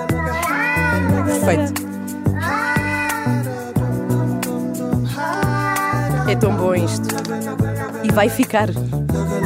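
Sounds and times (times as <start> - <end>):
furious cat yowling: 0.2 - 1.8, 2.4 - 3.6, 5.2 - 6.6
steady regular thumping beat: 1.1 - 9.4
speech: 6.4 - 7.4, 8.1 - 9.3.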